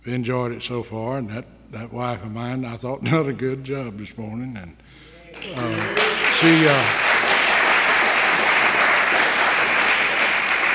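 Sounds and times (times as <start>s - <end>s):
speech: 0.1s - 4.8s, 5.4s - 7.2s
room full of people applauding: 5.4s - 10.7s.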